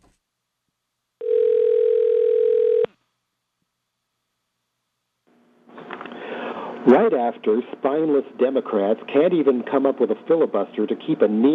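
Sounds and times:
telephone dial tone from a phone call in progress: 1.2 - 2.9
speech: 6.8 - 11.5.

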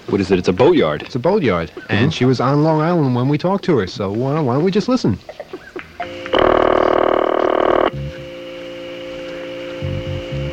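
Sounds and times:
speech: 0.1 - 5.6
faint hum on a quiet telephone line: 6.0 - 10.5
telephone ringing tone while a call is placed to a boatyard: 6.0 - 10.5.

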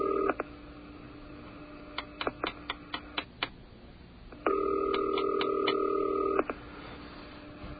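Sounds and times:
telephone dialing tone: 0.0 - 0.4, 4.4 - 6.5
telephone dialing clicks: 4.5 - 6.4.

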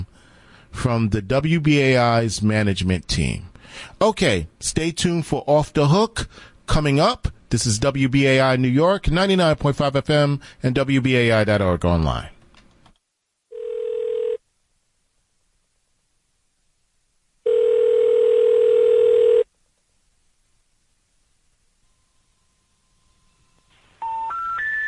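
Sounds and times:
speech: 0.7 - 12.3
telephone line tones on a call to a number not in service: 13.5 - 14.4, 17.4 - 19.5, 23.8 - 24.8.

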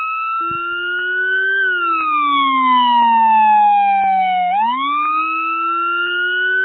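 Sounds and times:
police car siren wailing in New York City: 0.0 - 6.6
deep low-pitched bass tone: 0.4 - 5.0.

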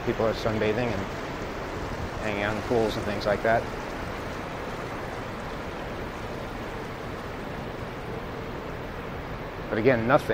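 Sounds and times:
speech: 0.0 - 1.2, 2.2 - 3.8, 9.7 - 10.3
water rushing from a moving boat on open water: 0.0 - 10.3
wind on the deck of a moving boat: 0.0 - 10.3.

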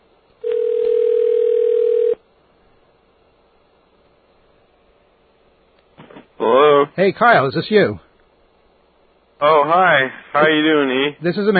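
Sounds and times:
telephone dial tone while placing a call from a radio studio: 0.4 - 2.2
faint telephone line hiss: 2.2 - 11.5
speech: 7.0 - 8.1, 9.4 - 11.5.

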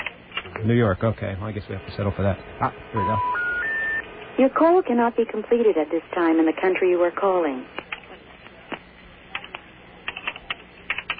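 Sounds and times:
speech: 0.6 - 3.4, 4.4 - 7.8
forceful typing on a keyboard: 9.4 - 11.1.

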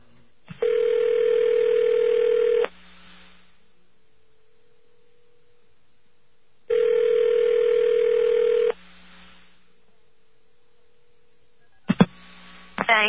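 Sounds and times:
telephone ringback tones on a call to a payphone number: 0.6 - 2.7, 6.7 - 8.8
faint telephone line hum: 2.6 - 6.7, 8.4 - 13.0.

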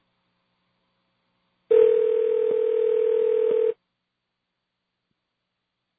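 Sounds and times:
telephone dial tone: 1.7 - 3.8.

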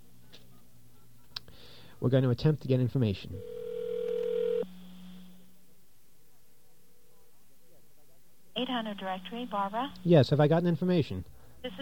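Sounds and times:
speech: 2.0 - 3.5, 8.7 - 11.8
telephone dial tone: 3.4 - 4.6.

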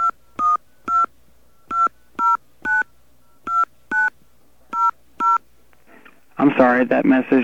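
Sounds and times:
touch-tone keypad beeps dialing a phone number: 0.0 - 5.4
speech: 6.5 - 7.4.

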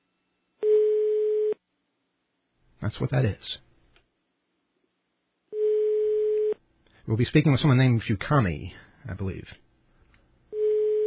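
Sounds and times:
German telephone ringing tone on an overseas call to Hamburg: 0.6 - 1.6, 5.5 - 6.6, 10.5 - 11.0
speech: 2.8 - 3.6, 7.1 - 9.6.

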